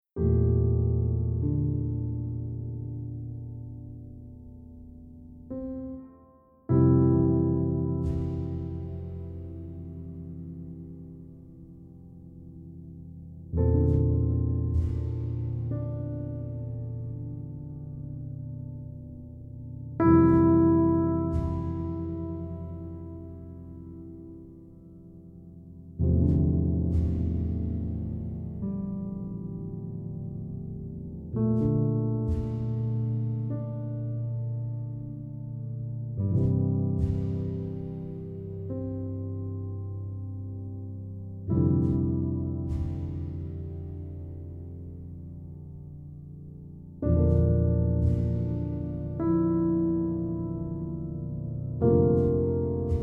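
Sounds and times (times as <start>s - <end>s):
quiet piano: 0.0s - 53.0s.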